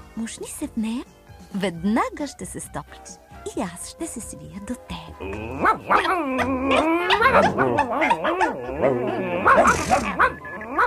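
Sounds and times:
speech: 0:00.2 - 0:10.4
dogs barking and yelping in the evening: 0:05.2 - 0:10.8.

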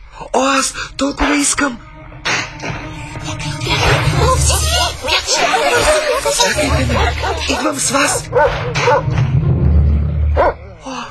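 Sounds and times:
speech: 0:00.4 - 0:01.9, 0:02.6 - 0:09.3
low steady rumbling background: 0:00.7 - 0:11.0
laughter: 0:03.6 - 0:08.4
big dog barking deeply: 0:08.2 - 0:09.2, 0:10.3 - 0:10.7.

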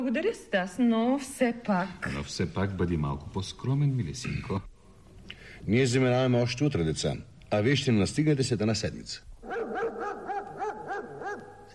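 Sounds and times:
speech: 0:00.0 - 0:04.7, 0:05.6 - 0:09.6
big dog barking: 0:09.4 - 0:11.7.

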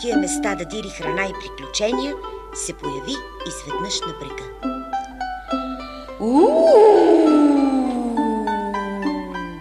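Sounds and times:
speech: 0:00.0 - 0:05.1, 0:06.2 - 0:07.3
steady tonal sounds: 0:06.1 - 0:09.5
hungry black wolf howling beside a stream: 0:06.2 - 0:09.5.

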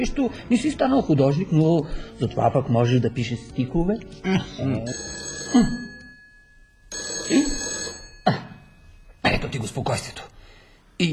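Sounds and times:
speech: 0:00.0 - 0:05.9, 0:07.3 - 0:07.7, 0:09.4 - 0:10.3
telephone bell ringing: 0:04.7 - 0:09.2.

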